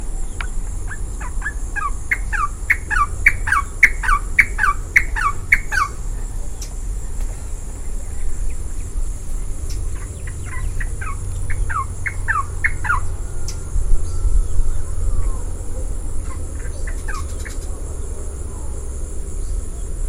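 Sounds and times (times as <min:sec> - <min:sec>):
rufous-naped wren: 0:00.0 - 0:20.0.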